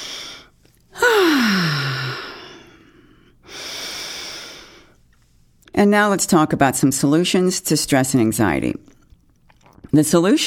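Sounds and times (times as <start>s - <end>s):
deep breaths drawn in and let out: 0.0s - 5.1s
speech: 5.8s - 9.0s, 9.9s - 10.4s.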